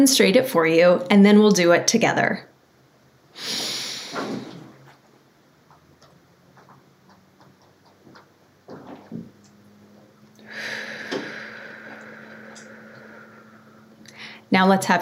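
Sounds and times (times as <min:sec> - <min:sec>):
speech: 0:00.0 - 0:02.5, 0:03.4 - 0:03.6, 0:14.5 - 0:14.9
person exhaling long and steady in box breathing: 0:03.4 - 0:04.7, 0:10.4 - 0:14.5
person inhaling strongly in box breathing: 0:03.4 - 0:04.7, 0:10.4 - 0:14.5.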